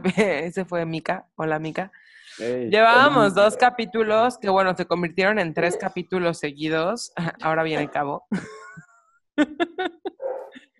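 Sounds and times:
speech: 0.0 - 10.6
laughter: 2.4 - 3.6, 9.4 - 10.3
dogs whimpering: 3.1 - 3.9, 5.6 - 6.0
dogs barking: 3.2 - 3.9, 5.6 - 6.0, 10.2 - 10.6.

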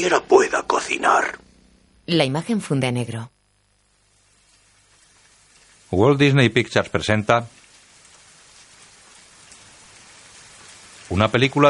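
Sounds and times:
speech: 0.0 - 1.4, 2.1 - 3.3, 5.9 - 7.6, 11.1 - 11.6
rain falling on a country house: 3.8 - 11.6.

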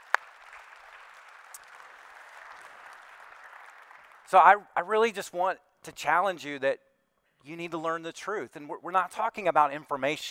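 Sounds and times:
audience applause: 0.0 - 4.3
speech: 4.3 - 10.2.

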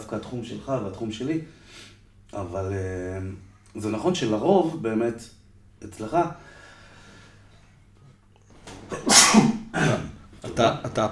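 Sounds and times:
speech: 0.1 - 6.6, 8.9 - 11.1
person sneezing: 8.9 - 10.1.

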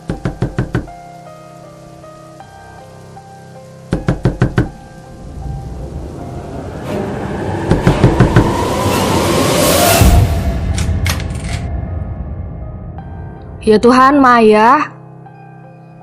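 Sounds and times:
woman knocking loudly on a door at midnight: 0.0 - 0.9, 3.9 - 4.8, 7.7 - 8.6
steady heavy rain: 0.0 - 10.8
thunder rumbling and crashing: 4.0 - 13.8
speech: 13.7 - 14.9.

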